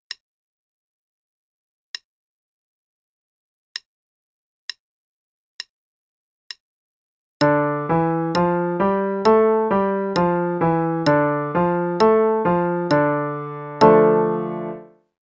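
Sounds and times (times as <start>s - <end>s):
D minor pattern: 7.4s - 14.9s.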